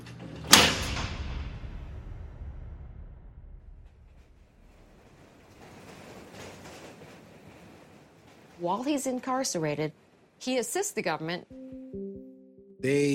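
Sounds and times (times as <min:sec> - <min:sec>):
subway train doors shutting with heavy thud: 0:00.0 - 0:01.8, 0:03.9 - 0:09.1
low mechanical rumble: 0:00.8 - 0:05.6
speech: 0:08.6 - 0:11.6, 0:12.8 - 0:13.1.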